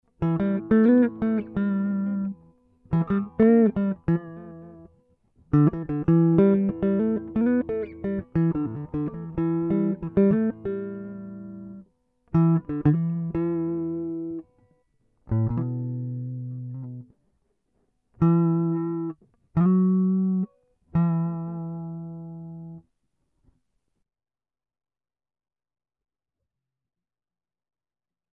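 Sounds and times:
guitar phrases: 0.0 - 17.2, 18.2 - 22.8.

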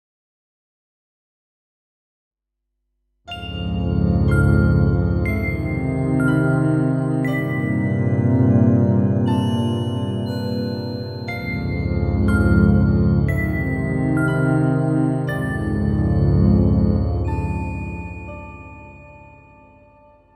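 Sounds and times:
spacey dreamy music sample pack: 3.3 - 20.3.

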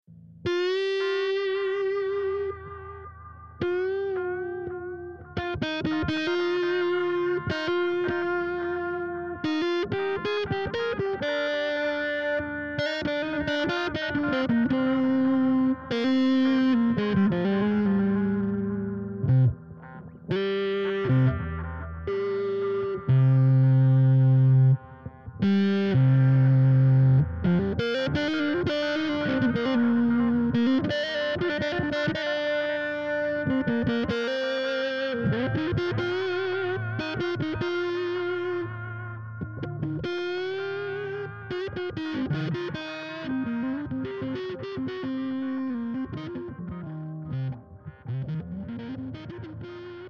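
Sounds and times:
electric guitar solo chords in C at 120 BPM: 0.1 - 50.0.

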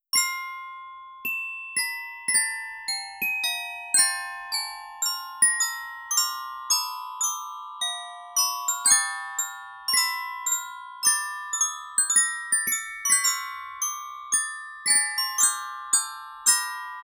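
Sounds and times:
glockenspiel: 0.1 - 17.0.

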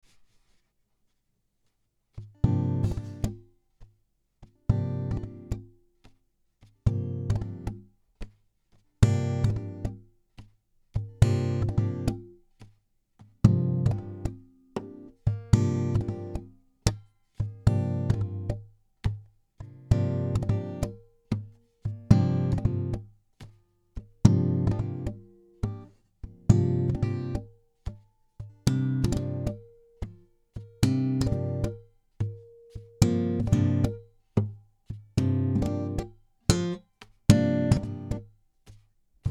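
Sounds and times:
acoustic groove music: 2.4 - 3.4, 4.7 - 5.7, 6.9 - 8.4, 9.0 - 10.0, 11.0 - 12.4, 13.4 - 23.1, 24.0 - 38.3.

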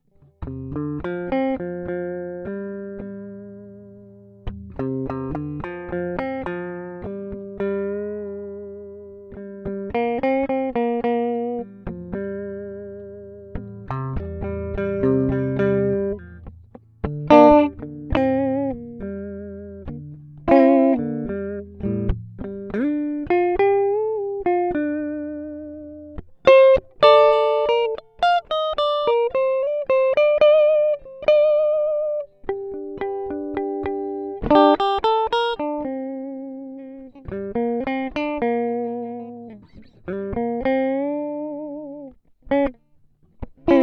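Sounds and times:
sad guitar improvisation in G minor: 0.1 - 43.8.

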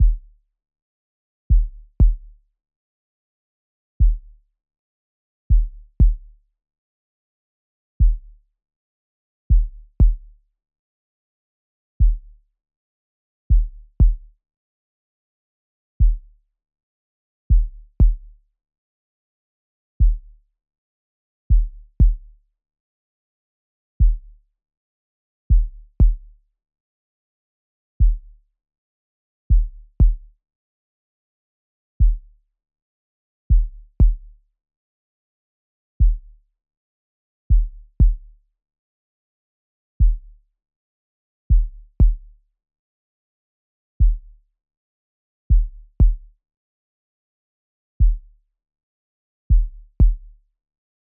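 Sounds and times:
kick drum at 60 bpm: 0.0 - 0.4, 1.5 - 2.4, 4.0 - 4.4, 5.5 - 6.4, 8.0 - 8.4, 9.5 - 10.4, 12.0 - 12.4, 13.5 - 14.4, 16.0 - 16.4, 17.5 - 18.4, 20.0 - 20.4, 21.5 - 22.4, 24.0 - 24.4, 25.5 - 26.4, 28.0 - 28.4, 29.5 - 30.4, 32.0 - 32.4, 33.5 - 34.4, 36.0 - 36.4, 37.5 - 38.4, 40.0 - 40.4, 41.5 - 42.4, 44.0 - 44.4, 45.5 - 46.4, 48.0 - 48.4, 49.5 - 50.4.

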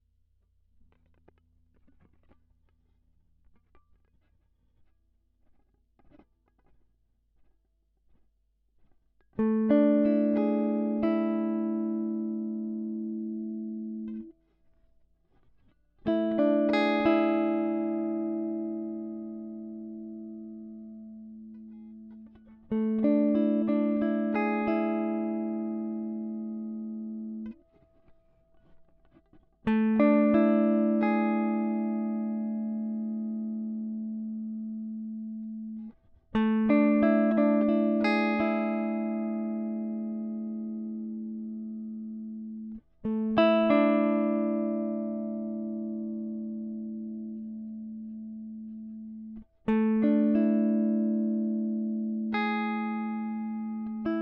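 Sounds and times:
guitar arpeggios: 9.4 - 14.3, 16.0 - 54.2.

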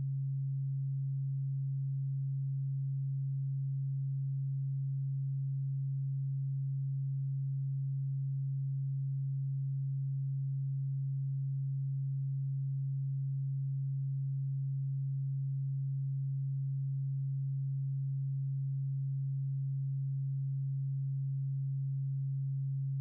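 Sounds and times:
1361 Hz sine wave tone: 0.0 - 22.9.

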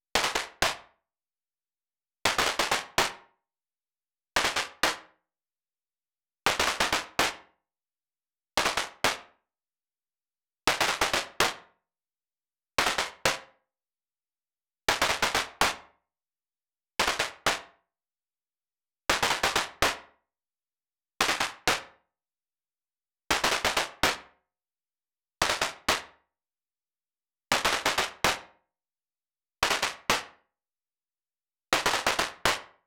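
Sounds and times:
fife and drum snare drum: 0.2 - 0.8, 2.3 - 3.3, 4.4 - 5.1, 6.5 - 7.5, 8.6 - 9.3, 10.7 - 11.7, 12.8 - 13.5, 14.9 - 16.0, 17.0 - 17.7, 19.1 - 20.2, 21.2 - 22.0, 23.3 - 24.3, 25.4 - 26.2, 27.5 - 28.6, 29.6 - 30.4, 31.8 - 32.8.

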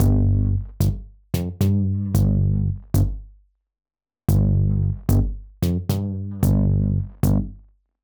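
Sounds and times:
bass in G: 0.0 - 3.3, 4.3 - 7.6.

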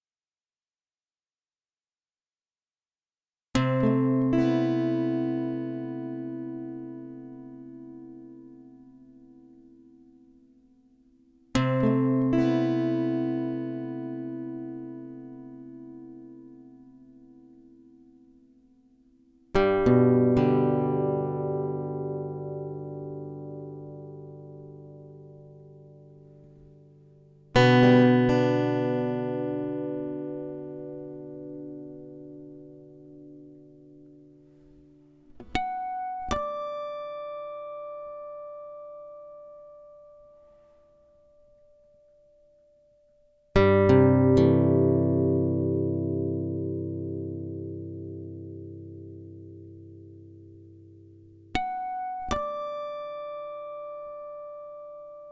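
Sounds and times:
guitar arpeggios and harmonics in E minor: 3.6 - 10.3, 11.6 - 18.3, 19.5 - 40.4, 43.6 - 55.3.

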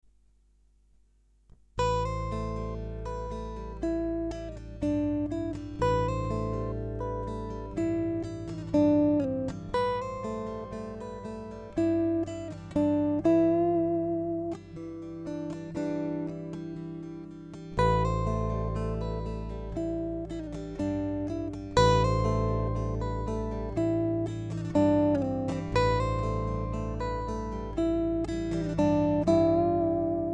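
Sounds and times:
guitar arpeggios at 120 bpm: 1.8 - 30.3.

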